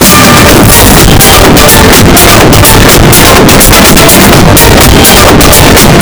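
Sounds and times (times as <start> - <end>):
boosted bass: 0.0 - 6.0.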